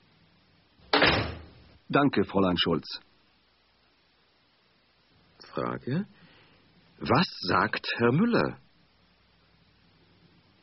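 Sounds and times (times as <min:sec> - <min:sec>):
door slamming shut: 0:00.9 - 0:01.6
speech: 0:01.9 - 0:03.1, 0:05.6 - 0:06.2, 0:07.0 - 0:08.6.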